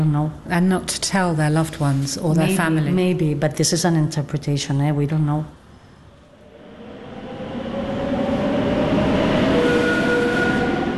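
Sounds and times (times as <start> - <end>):
speech: 0.0 - 5.6
train rumbling on rails: 6.3 - 10.9.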